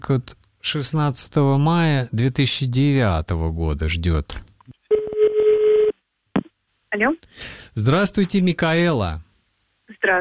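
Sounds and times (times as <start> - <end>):
speech: 0.0 - 4.5, 6.9 - 9.3, 10.0 - 10.1
telephone tone while a number is dialed: 4.9 - 5.9.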